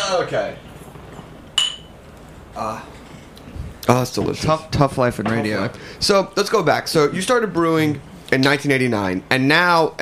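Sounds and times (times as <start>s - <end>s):
speech: 0.1s - 0.7s, 2.6s - 3.0s, 3.8s - 10.0s
beer glasses clinking together in a toast: 1.6s - 2.0s.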